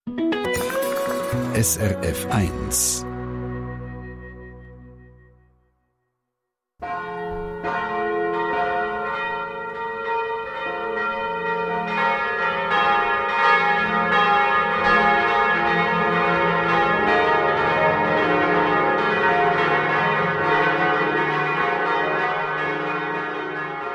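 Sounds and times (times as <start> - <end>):
all the church bells of Bern ringing for a church festival: 0.6 - 3.0, 6.8 - 23.9
speech: 1.6 - 3.1.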